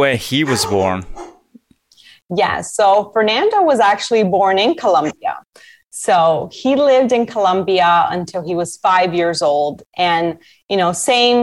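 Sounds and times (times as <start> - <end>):
speech: 0.0 - 1.3, 2.3 - 11.4
dog barking: 0.4 - 1.4.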